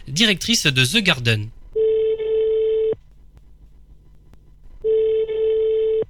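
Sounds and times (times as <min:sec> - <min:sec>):
speech: 0:00.1 - 0:01.6
telephone ringback tone on an outgoing call: 0:01.8 - 0:03.0, 0:04.8 - 0:06.0.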